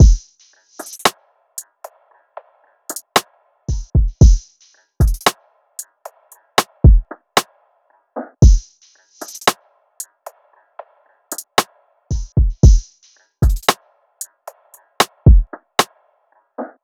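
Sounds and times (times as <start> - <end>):
drum loop at 114 BPM: 0.0 - 1.1, 2.9 - 5.4, 6.8 - 7.1, 8.4 - 9.6, 11.3 - 13.8, 15.2 - 15.5.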